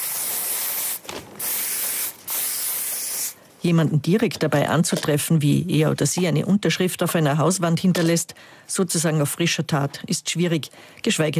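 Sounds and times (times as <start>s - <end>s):
aerosol spray can of paint hissing: 0.0s - 3.4s
speech: 3.6s - 11.3s.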